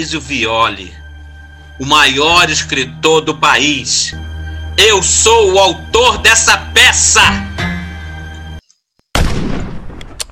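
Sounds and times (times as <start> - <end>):
speech: 0.0 - 1.0, 1.8 - 7.6
single loud gunshot: 9.2 - 10.2.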